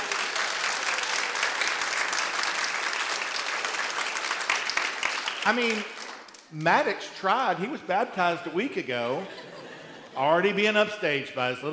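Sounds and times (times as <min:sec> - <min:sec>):
audience applause for a cheer performer: 0:00.0 - 0:06.5
speech: 0:05.5 - 0:09.5, 0:10.2 - 0:11.7
laughter: 0:09.0 - 0:10.6.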